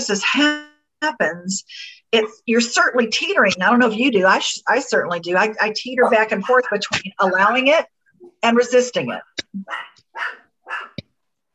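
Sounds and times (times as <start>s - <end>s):
speech: 0.0s - 10.9s
small dog yapping: 9.6s - 11.0s.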